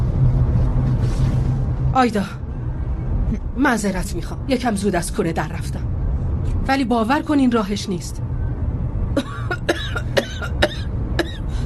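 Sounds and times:
low steady rumble: 0.0 - 11.6
speech: 2.0 - 2.4, 3.6 - 5.9, 6.7 - 8.3
harsh coughs: 9.2 - 11.5.

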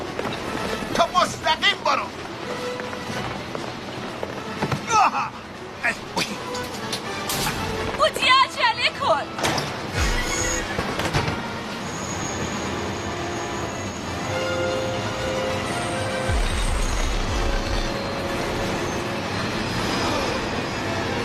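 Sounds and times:
train rumbling along the tracks: 0.0 - 21.2
faint metallic squeals and whines of a train: 9.5 - 21.2.

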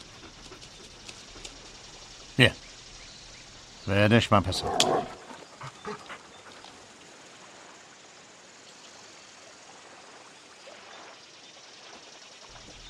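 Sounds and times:
dog panting: 0.0 - 1.8, 5.5 - 6.8
speech: 2.4 - 2.6, 3.9 - 5.2.

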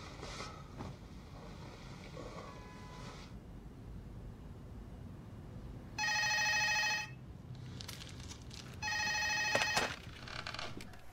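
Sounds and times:
telephone ringing with bright buzzing trills: 6.0 - 7.2, 8.8 - 10.1.

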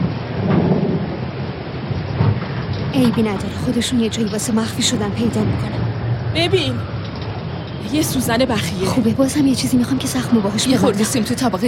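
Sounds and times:
rumbling thunder in a worsening thunderstorm: 0.0 - 11.4
heavy rain in a worsening thunderstorm: 0.0 - 11.6
speech: 3.0 - 7.0, 7.8 - 11.6.

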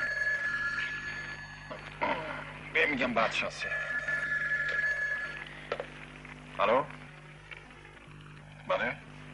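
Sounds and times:
telephone ringing with a high electronic trill: 0.0 - 6.0
faint hum: 0.0 - 9.3
speech: 2.8 - 4.0, 6.6 - 7.0, 8.7 - 9.0.

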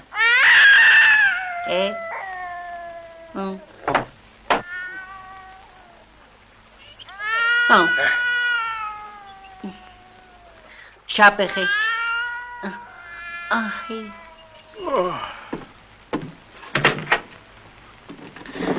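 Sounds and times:
cat meowing: 0.1 - 3.8, 4.5 - 6.2, 6.9 - 10.8, 11.4 - 15.7
speech: 3.3 - 3.6, 7.7 - 8.3, 11.2 - 11.9, 12.6 - 12.8, 13.5 - 14.2, 14.9 - 15.4.

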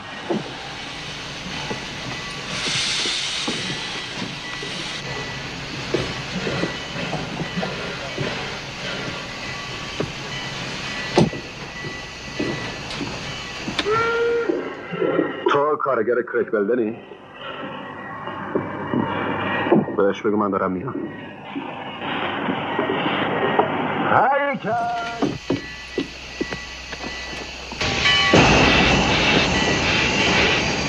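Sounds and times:
train rumbling along the rails with clanks and clatter: 0.0 - 30.8
short tonal train whistle: 13.8 - 14.8
speech: 15.9 - 17.2, 20.0 - 21.3, 24.1 - 25.2.

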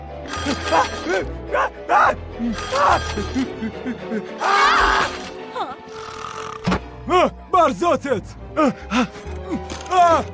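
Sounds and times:
old-style telephone bell ringing: 0.3 - 1.3, 2.6 - 3.5
speech: 0.4 - 4.8, 7.1 - 10.3.

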